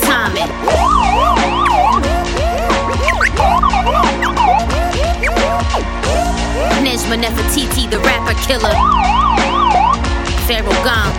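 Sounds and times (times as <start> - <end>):
several emergency vehicle sirens wailing: 0.7 - 6.9, 8.6 - 10.1
speech: 7.1 - 9.6, 10.5 - 11.1.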